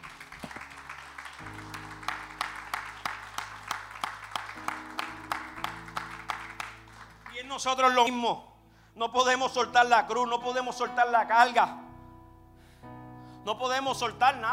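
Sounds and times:
audience clapping in a steady rhythmic beat: 0:00.0 - 0:08.0
speech: 0:07.5 - 0:11.8, 0:13.5 - 0:14.5.

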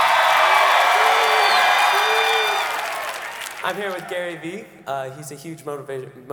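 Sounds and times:
people shouting: 0:00.0 - 0:02.9
loud crowd cheering and whooping: 0:00.0 - 0:04.2
speech: 0:03.7 - 0:06.3.

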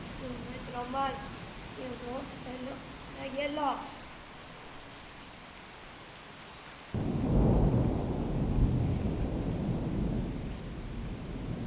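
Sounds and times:
rain hiss: 0:00.0 - 0:11.6
speech: 0:00.8 - 0:04.0
thunder rumbling in a storm: 0:07.0 - 0:11.6.

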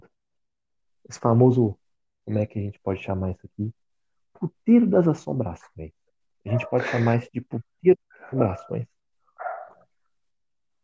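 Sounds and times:
speech: 0:01.1 - 0:03.8, 0:04.4 - 0:09.0
dog barking: 0:06.5 - 0:07.1, 0:09.4 - 0:09.8.

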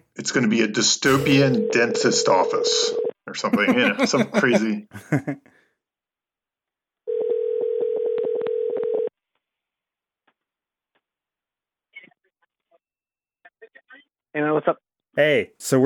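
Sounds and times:
speech: 0:00.2 - 0:05.6, 0:14.4 - 0:15.8
steady phone ringing tone: 0:01.2 - 0:03.2, 0:07.1 - 0:09.1
laughter: 0:03.3 - 0:05.5.

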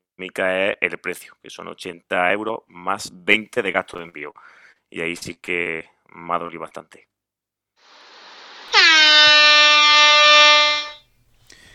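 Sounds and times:
speech: 0:00.2 - 0:07.1
loud air horn blast sound effect: 0:07.9 - 0:11.0.

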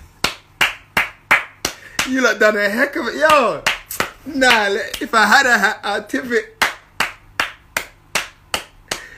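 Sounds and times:
one person clapping hands: 0:00.2 - 0:02.2, 0:03.2 - 0:05.1, 0:06.6 - 0:09.1
speech: 0:02.0 - 0:06.5.

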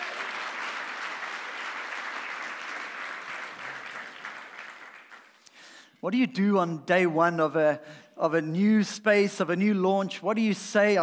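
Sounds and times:
audience applause: 0:00.0 - 0:05.4
speech: 0:06.0 - 0:11.0.

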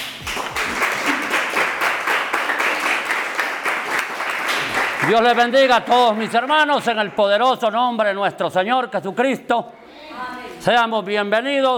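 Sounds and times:
audience applauding: 0:00.0 - 0:07.2
speech: 0:05.1 - 0:11.7.

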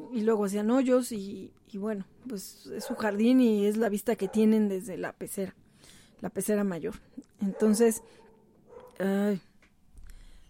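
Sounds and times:
speech: 0:00.1 - 0:08.2, 0:09.0 - 0:09.5
dog barking: 0:02.8 - 0:03.2, 0:04.2 - 0:04.6, 0:07.4 - 0:09.0.

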